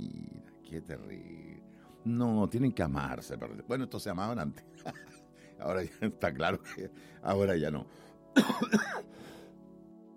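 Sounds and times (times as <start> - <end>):
speech: 0.7 - 9.4
person coughing with a throaty rasp: 8.4 - 9.1.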